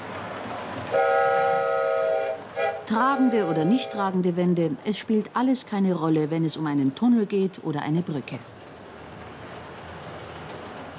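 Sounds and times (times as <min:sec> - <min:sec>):
train rumbling on tracks: 0:00.0 - 0:10.9
loud multi-tone train horn: 0:00.9 - 0:04.1
speech: 0:02.9 - 0:08.5.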